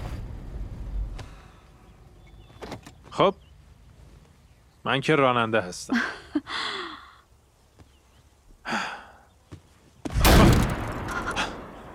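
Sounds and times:
speech: 3.2 - 3.5, 4.8 - 6.8
gunshot with tail: 10.1 - 11.8.

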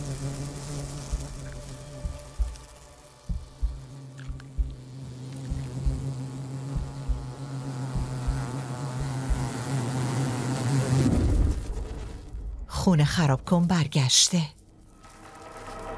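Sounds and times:
wasp buzzing in flight by a jumping spider's nest: 0.0 - 12.3
speech: 12.9 - 14.6.

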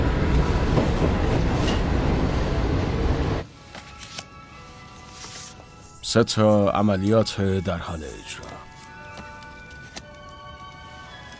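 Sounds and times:
train rumbling along the rails with rattling clatter: 0.0 - 3.4
speech: 6.1 - 8.5.

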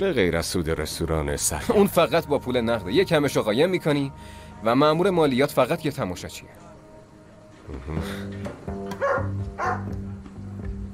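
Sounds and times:
speech: 0.0 - 6.6, 7.7 - 10.0
dog barking: 9.0 - 9.9.

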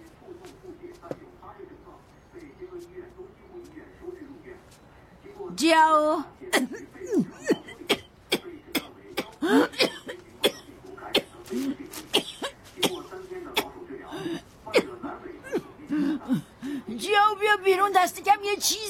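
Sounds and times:
speech: 5.6 - 6.8, 17.9 - 18.8
dry coughing: 6.5 - 16.8.

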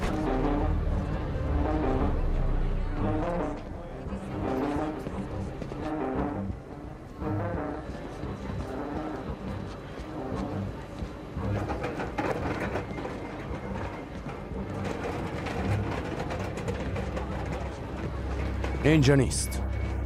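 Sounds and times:
departing train rumbling: 0.0 - 20.0
speech: 18.9 - 19.6.

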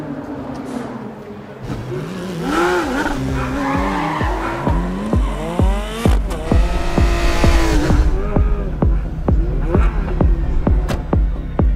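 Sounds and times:
race cars speeding by during a race: 0.0 - 11.6.

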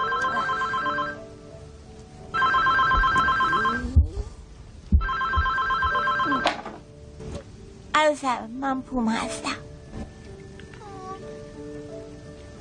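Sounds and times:
telephone bell ringing loudly in shrill bursts: 0.0 - 1.2, 2.4 - 3.8, 5.0 - 6.6
speech: 8.1 - 9.6.

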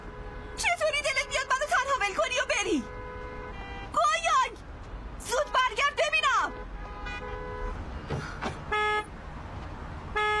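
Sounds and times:
car horn honks: 0.0 - 1.6, 2.3 - 4.0, 6.2 - 7.8, 8.5 - 9.1, 10.1 - 10.3
steady traffic rumble: 0.0 - 10.3.

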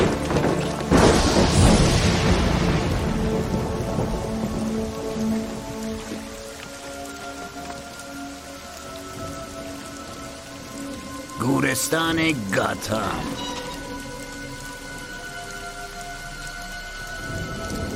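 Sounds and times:
distant thunder rumbling: 0.0 - 6.4
steady rain pouring: 0.0 - 17.9
speech: 11.8 - 13.5.

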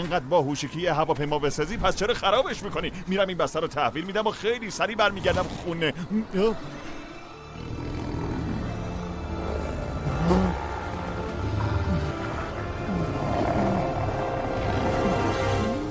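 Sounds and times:
speech: 0.0 - 6.9
wolves growling: 5.2 - 15.9.

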